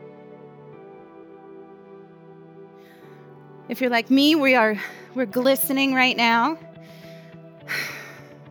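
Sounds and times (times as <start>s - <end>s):
steady low tone: 0.1s - 8.4s
speech: 3.7s - 6.7s
heavy breathy exhale after rowing workout: 6.8s - 8.4s.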